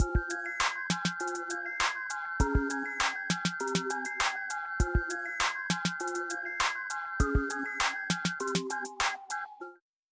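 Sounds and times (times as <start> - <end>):
Latin trap synth loops: 0.0 - 9.2
Latin trap drums: 0.0 - 9.3.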